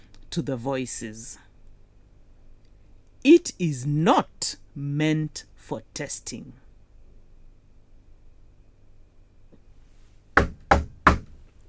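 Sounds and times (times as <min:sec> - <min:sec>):
speech: 0:00.3 - 0:01.4, 0:03.2 - 0:06.6
firm knocking on a door: 0:10.4 - 0:11.4.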